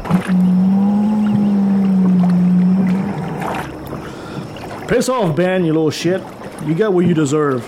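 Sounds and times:
long low eerie moan from the sea: 0.0s - 4.9s
hissing wash of sea water: 0.0s - 7.6s
speech: 0.2s - 0.7s, 4.9s - 7.6s.

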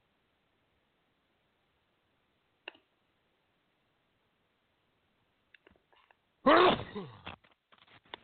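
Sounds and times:
person sneezing: 6.4s - 7.4s.

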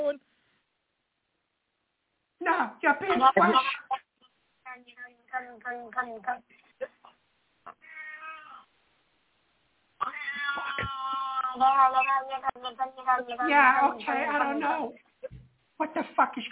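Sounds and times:
speech: 2.6s - 3.8s, 5.5s - 6.6s, 11.6s - 15.0s, 15.8s - 16.4s
cat meowing and caterwauling: 7.7s - 8.7s, 10.0s - 13.5s.

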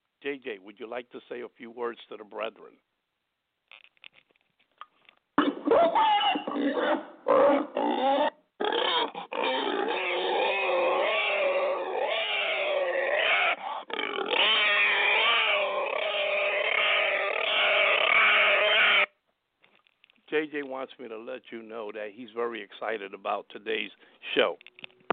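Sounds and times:
speech: 0.2s - 2.9s, 5.7s - 8.3s, 20.3s - 24.8s
pig grunting and oinking in a studio: 5.4s - 19.1s.

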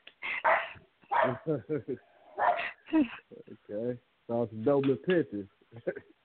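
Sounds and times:
laughter: 0.2s - 3.2s, 5.8s - 6.0s
small Yorkie mix rescue dog barking outside: 0.4s - 1.5s, 2.4s - 2.8s
speech: 1.2s - 2.1s, 2.9s - 6.2s.

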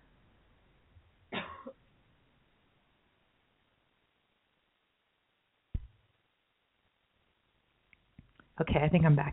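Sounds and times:
person coughing: 1.3s - 1.8s
speech: 8.6s - 9.3s.

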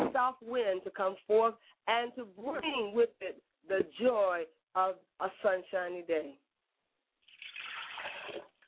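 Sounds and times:
speech: 0.2s - 6.4s
liquid poured out as a libation in a ritual: 7.2s - 8.6s.

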